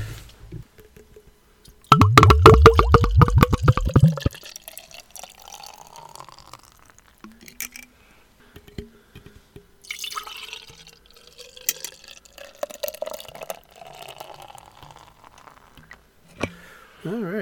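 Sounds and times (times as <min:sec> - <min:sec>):
beer glugging from a growler into a glass stein: 0:00.8 - 0:07.8, 0:09.8 - 0:15.9
beer trickling and dripping: 0:01.6 - 0:07.8, 0:09.8 - 0:16.0.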